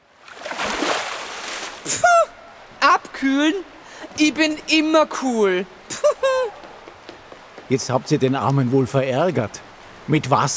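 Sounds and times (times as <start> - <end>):
small splash of water flicked toward someone: 0.2 - 2.0
speech: 1.9 - 2.4, 3.2 - 6.6, 7.7 - 10.5.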